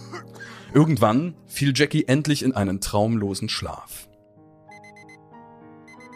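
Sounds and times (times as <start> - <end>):
speech: 0.2 - 4.1
alarm clock ringing with a repeating electronic melody: 4.7 - 5.2, 5.9 - 6.1.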